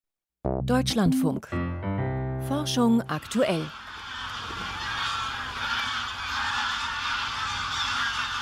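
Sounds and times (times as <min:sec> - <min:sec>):
speech: 0:00.4 - 0:03.8
flock of greylag geese honking: 0:02.5 - 0:08.4.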